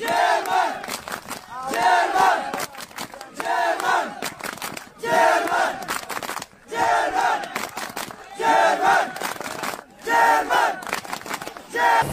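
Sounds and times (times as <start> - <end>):
large crowd of migrants chanting in unison: 0.0 - 0.9, 1.5 - 6.0, 6.6 - 10.9, 11.6 - 12.0.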